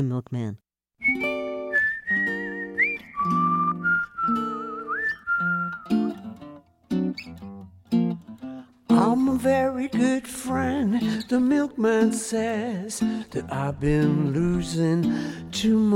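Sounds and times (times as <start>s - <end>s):
speech: 0.0s - 1.3s, 9.0s - 15.9s
man whistling a bright melody in a song: 1.0s - 6.3s.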